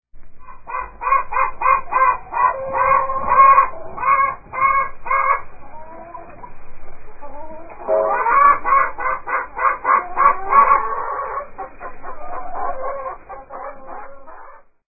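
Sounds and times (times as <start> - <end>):
chickens: 0.3 - 14.8
answering machine messages: 7.8 - 8.3.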